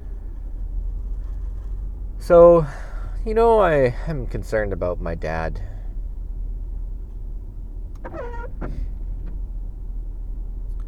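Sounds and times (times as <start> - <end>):
low rumble of a car interior driving in rush-hour traffic: 0.0 - 10.8
speech: 2.2 - 5.7
car windshield wipers squeaking: 6.8 - 10.4.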